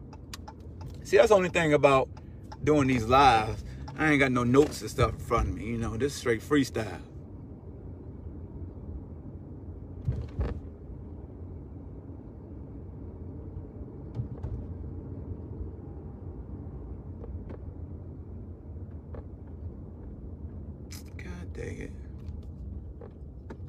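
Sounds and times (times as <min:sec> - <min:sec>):
car engine and road rumble from inside a slowly parking car: 0:00.0 - 0:23.6
speech: 0:01.1 - 0:07.1.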